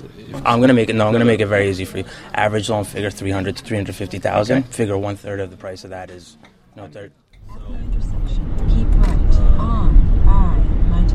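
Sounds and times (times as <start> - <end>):
speech: 0.3 - 8.8
road and engine noise inside a moving car: 7.4 - 11.1.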